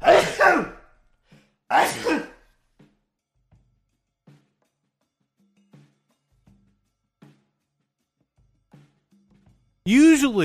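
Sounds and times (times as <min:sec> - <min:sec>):
person sneezing: 0:00.0 - 0:00.8, 0:01.7 - 0:02.4
person speaking: 0:09.9 - 0:10.4.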